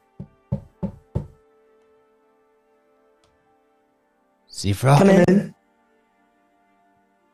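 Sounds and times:
knocking on a door: 0.1 - 1.4
speech: 4.6 - 5.6.

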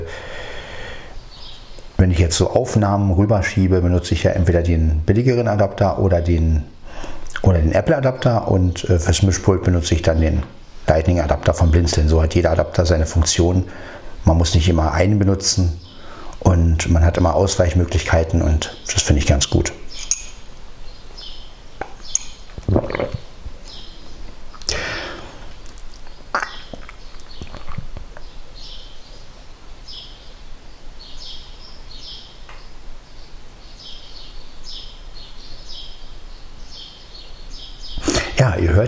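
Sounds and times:
birds chirping outdoors: 0.0 - 38.8
speech: 2.0 - 15.8, 16.4 - 19.8
sharp clinks: 20.0 - 20.4.

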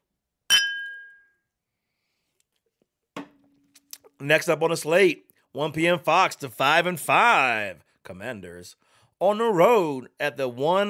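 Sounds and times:
glasses clinking in a toast: 0.5 - 1.3
speech: 4.2 - 10.8.

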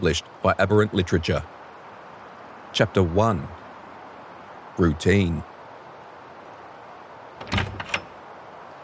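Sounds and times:
speech: 0.0 - 1.6, 2.8 - 3.6, 4.8 - 5.5
old wooden cabin door clunking and rattling: 7.4 - 8.2.

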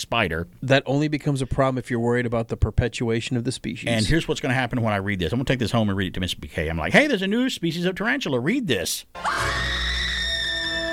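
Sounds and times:
speech: 0.0 - 9.9
voice imitating a woman's scream: 9.2 - 10.9.

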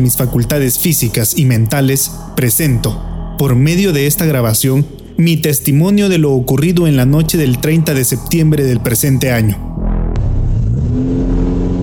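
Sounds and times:
speech: 0.0 - 9.8
car engine revving: 9.6 - 11.8.

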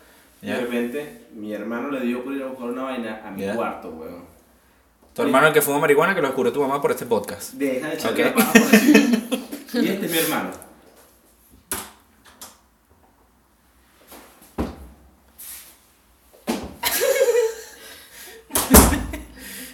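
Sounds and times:
speech: 0.4 - 4.3, 5.2 - 10.7
laughter: 8.2 - 10.3, 16.8 - 19.7
room door knocks and thuds: 18.6 - 19.3.

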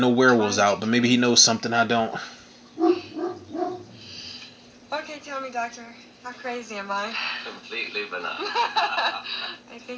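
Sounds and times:
speech: 0.0 - 2.4, 5.5 - 9.9
dog barking: 2.8 - 3.9
laughter: 8.4 - 9.5.

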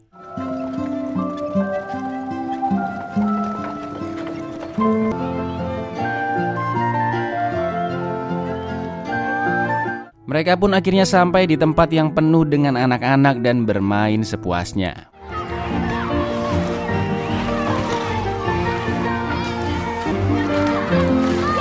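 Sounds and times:
melodic music: 0.0 - 13.7, 15.2 - 21.5
horse hooves clip-clopping pulling a carriage: 0.2 - 5.5, 15.6 - 21.5
speech: 10.3 - 15.1.

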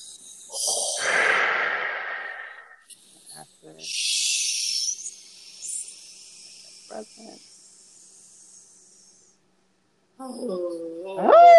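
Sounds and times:
person exhaling during a breathing and voice exercise: 0.5 - 2.8
speech: 3.8 - 4.1, 7.0 - 7.5, 10.2 - 11.4.

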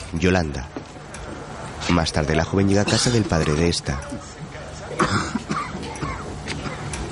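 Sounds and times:
speech: 0.1 - 0.8, 1.9 - 5.2
elderly man coughing raspily in bed: 2.8 - 3.3, 5.0 - 6.9
elderly man clearing throat: 5.0 - 6.9.

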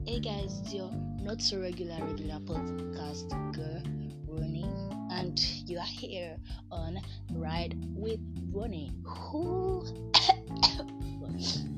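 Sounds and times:
low steady hum: 0.0 - 11.7
speech: 0.1 - 11.7
person coughing: 10.2 - 10.9.

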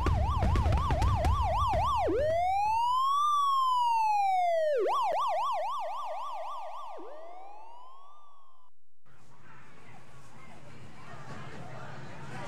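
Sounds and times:
police car siren wailing at an amusement park: 0.0 - 8.7.

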